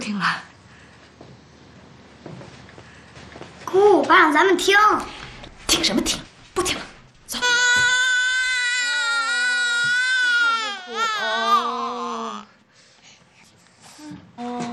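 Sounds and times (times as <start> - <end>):
speech: 0.2 - 0.5, 3.7 - 5.2, 5.8 - 7.6
infant crying in high-pitched wails: 7.4 - 12.5.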